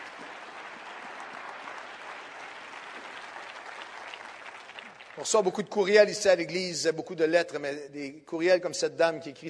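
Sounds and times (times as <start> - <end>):
audience applauding at a morning church service: 0.0 - 5.6
speech: 5.2 - 9.4.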